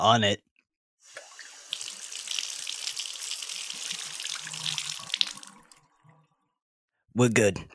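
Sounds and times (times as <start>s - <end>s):
speech: 0.0s - 1.2s, 7.2s - 7.7s
water pouring from a tap with splashes and gurgles: 1.0s - 6.4s.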